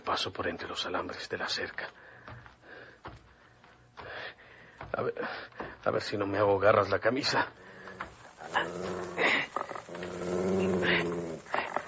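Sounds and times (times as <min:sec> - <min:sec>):
speech: 0:00.1 - 0:02.0, 0:04.9 - 0:07.6, 0:08.5 - 0:09.4
dog growling: 0:08.4 - 0:11.8.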